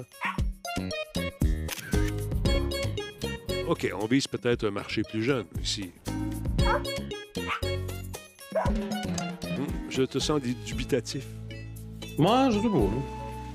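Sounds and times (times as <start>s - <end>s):
speech: 0.0s - 1.0s, 3.7s - 7.5s, 10.0s - 11.4s, 12.2s - 13.2s
small dog yapping in a photography video game trailer: 0.2s - 0.4s, 6.6s - 7.7s
bright tonal video-game music: 0.6s - 4.0s, 6.0s - 13.5s
camera shutter clicks in a dog-photography video game: 1.7s - 2.3s.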